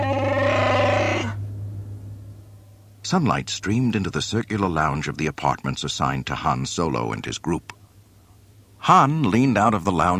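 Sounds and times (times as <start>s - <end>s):
small huddled creatures grunting and bleating: 0.0s - 1.4s
steady low hum: 0.0s - 10.1s
speech: 3.1s - 7.8s, 8.8s - 10.1s.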